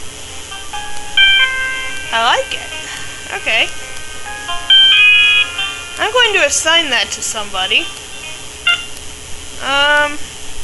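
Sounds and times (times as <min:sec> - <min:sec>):
phone buzzy tone sliding slightly upward: 0:00.0 - 0:09.6
steady faint hiss: 0:00.0 - 0:10.6
speech: 0:02.1 - 0:03.8, 0:06.0 - 0:08.0, 0:09.6 - 0:10.3
phone keypad beeps while moving through menus: 0:08.7 - 0:08.9.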